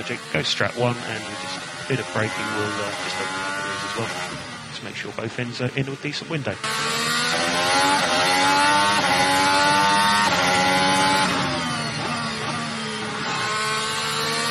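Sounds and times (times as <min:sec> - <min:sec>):
speech: 0:00.0 - 0:07.0
racing car engine humming behind safety car: 0:00.0 - 0:14.4.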